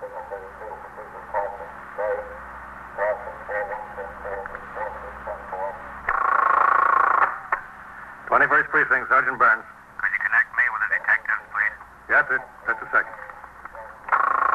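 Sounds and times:
tinny narrow-band police radio voice over a monitor: 0.0s - 5.9s, 8.3s - 14.0s
loud steady burst of radio static squelch: 0.0s - 6.6s, 7.8s - 14.5s
speech: 8.5s - 9.8s, 12.3s - 12.9s.

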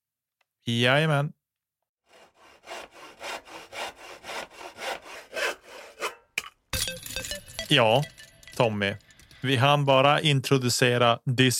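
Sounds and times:
speech: 0.7s - 1.4s, 7.7s - 11.5s
handsaw cutting through wood: 2.0s - 6.3s.

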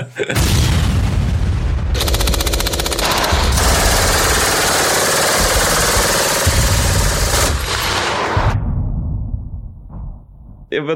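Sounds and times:
heavy booming explosions: 0.3s - 10.8s
rapid bursts of machine gun fire: 1.9s - 8.6s.

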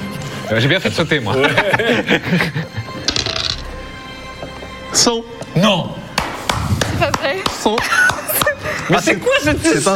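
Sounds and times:
speech: 0.5s - 2.8s, 5.0s - 6.0s, 7.0s - 8.1s, 8.7s - 9.9s
laughter: 1.2s - 3.0s, 7.6s - 9.8s
dice clattering across a hard tabletop: 3.1s - 3.7s.

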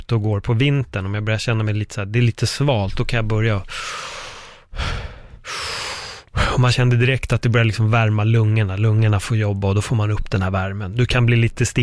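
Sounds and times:
speech: 0.1s - 5.6s, 6.6s - 11.8s
forceful breathing exercise with strong exhales: 3.7s - 6.6s.

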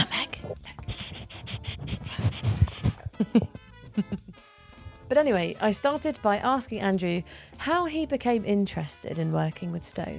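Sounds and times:
dog panting: 0.3s - 3.2s
speech: 3.2s - 4.2s, 5.1s - 10.1s.

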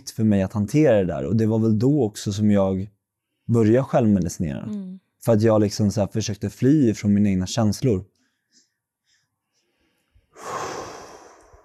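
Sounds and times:
speech: 0.1s - 8.2s
heavy breathing with a long rushing exhale: 8.2s - 11.6s.

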